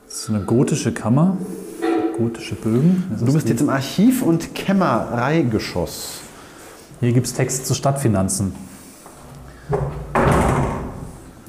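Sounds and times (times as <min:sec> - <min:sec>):
speech: 0:00.2 - 0:01.6, 0:02.2 - 0:06.2, 0:07.0 - 0:08.7
large heavy door swinging with a soft knock: 0:09.7 - 0:11.1.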